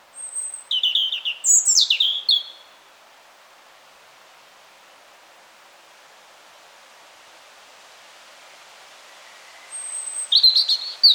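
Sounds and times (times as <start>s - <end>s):
European robin whistling and twittering, Erithacus rubecula: 0.2s - 2.7s, 9.7s - 11.1s.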